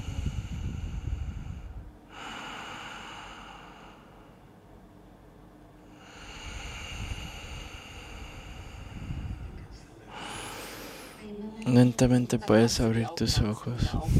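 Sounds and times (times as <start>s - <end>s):
long slow deep breaths: 0.0s - 4.5s, 5.8s - 11.4s
speech: 11.7s - 14.1s.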